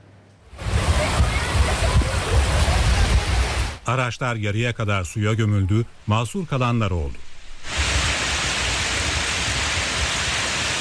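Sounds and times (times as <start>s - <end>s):
heavy rain mixed with hail pouring down in Edirne: 0.5s - 3.8s, 7.6s - 10.7s
speech: 3.9s - 7.3s.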